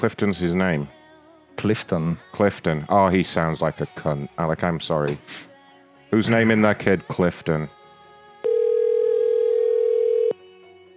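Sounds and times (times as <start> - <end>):
speech: 0.0 - 1.0, 1.6 - 5.5, 6.1 - 7.8
telephone call tone while placing a call: 8.4 - 10.4.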